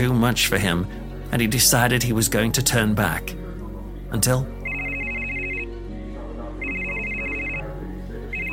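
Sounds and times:
speech: 0.0s - 3.4s, 4.1s - 4.6s
cell phone ringing with a melodic ringtone: 4.6s - 5.9s, 6.6s - 8.5s.

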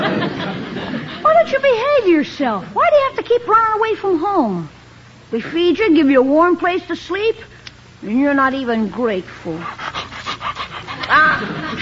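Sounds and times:
laughter: 0.0s - 1.3s, 10.9s - 11.8s
speech: 1.5s - 10.0s, 11.1s - 11.8s
Great Dane panting in quick steady breaths: 9.5s - 11.8s.

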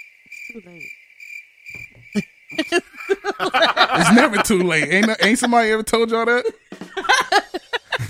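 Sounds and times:
crickets chirping sound effect: 0.0s - 8.0s
speech: 0.5s - 1.0s, 2.1s - 7.1s
soft low thumps and taps: 1.7s - 2.8s
laughter: 2.6s - 8.0s.

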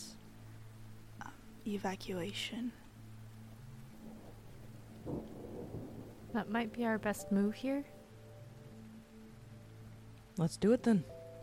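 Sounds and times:
steady hiss of rain: 0.0s - 11.4s
speech: 1.6s - 2.8s, 6.3s - 8.0s, 10.4s - 11.2s
low roll of thunder: 5.0s - 7.3s.

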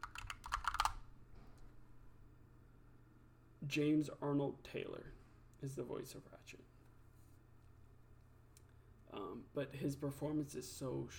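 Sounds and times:
typing on a computer keyboard: 0.0s - 1.0s
speech: 3.6s - 6.8s, 9.1s - 11.1s.

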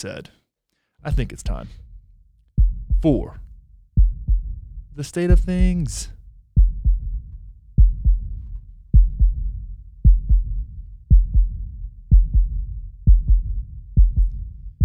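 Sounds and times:
speech: 0.0s - 0.4s, 1.0s - 1.8s, 3.0s - 3.4s, 5.0s - 6.2s
deep heartbeat thumping: 1.1s - 2.0s, 2.6s - 14.8s.

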